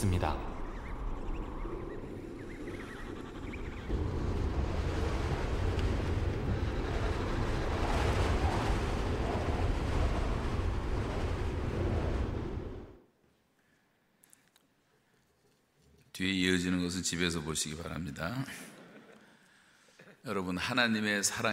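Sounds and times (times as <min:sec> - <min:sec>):
speech: 0:00.0 - 0:00.5, 0:16.2 - 0:18.8, 0:20.2 - 0:21.5
howling snowstorm wind: 0:00.0 - 0:13.0.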